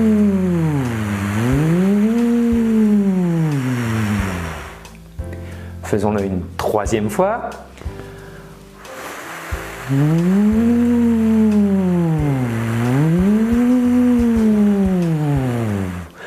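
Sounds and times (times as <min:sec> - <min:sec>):
voice gliding up and down imitating a small siren as a vocal exercise: 0:00.0 - 0:04.6, 0:09.9 - 0:15.9
speech: 0:05.9 - 0:07.7, 0:09.9 - 0:11.2.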